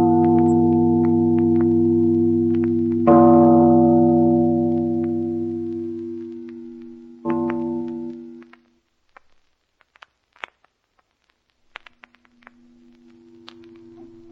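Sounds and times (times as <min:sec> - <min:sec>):
big bell tolling: 0:00.0 - 0:08.4.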